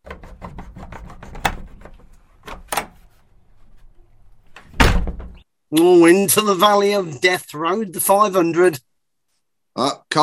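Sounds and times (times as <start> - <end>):
rubbing clunking knocks of doors: 0.0 - 5.4
heavy wooden pub doors being unbolted and pulled open: 1.4 - 5.4
loud thud: 4.8 - 5.4
speech: 5.7 - 8.9, 9.8 - 10.2.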